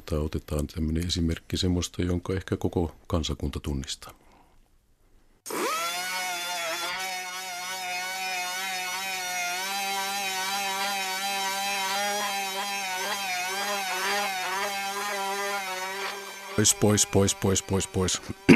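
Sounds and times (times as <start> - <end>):
speech: 0.1 - 4.2, 16.6 - 18.5
dentist's drill from 1958 whining: 5.5 - 18.5.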